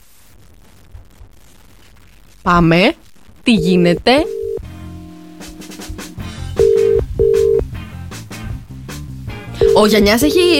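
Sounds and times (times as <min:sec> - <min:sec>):
speech: 0:02.4 - 0:04.4, 0:09.8 - 0:10.5
telephone ringback tones as a call is placed: 0:03.5 - 0:04.6, 0:06.6 - 0:07.6, 0:09.6 - 0:10.5
music: 0:04.2 - 0:10.5.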